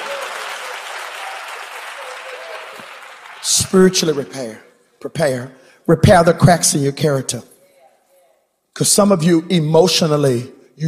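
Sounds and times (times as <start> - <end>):
audience clapping: 0.0 - 4.4
speech: 3.4 - 7.5, 8.8 - 10.8.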